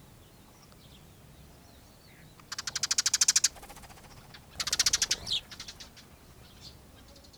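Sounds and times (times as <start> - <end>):
Eurasian tree sparrow Passer montanus chirps and rattling ticking notes: 2.1 - 7.3.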